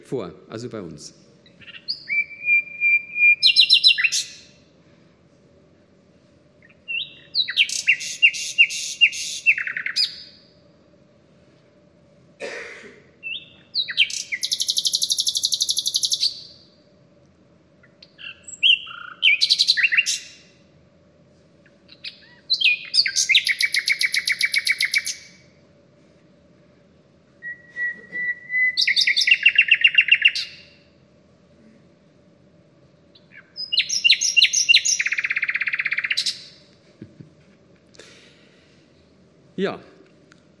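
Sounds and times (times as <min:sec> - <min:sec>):
speech: 0:00.1 - 0:01.7
common nightingale singing: 0:01.4 - 0:04.6, 0:06.6 - 0:10.4, 0:13.2 - 0:16.7, 0:17.8 - 0:20.4, 0:21.9 - 0:25.4, 0:27.4 - 0:30.8, 0:33.1 - 0:36.6.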